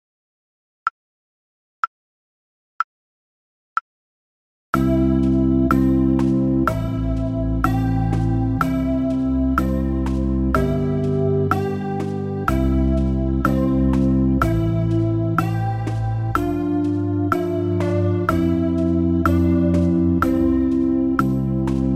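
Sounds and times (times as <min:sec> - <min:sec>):
slow tempo melody: 0:04.8 - 0:21.9.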